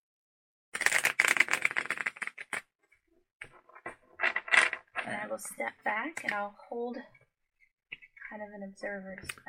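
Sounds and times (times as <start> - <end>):
deck of tarot cards being shuffled for a reading: 0.8 - 2.7
speech: 5.1 - 7.2, 8.3 - 9.4.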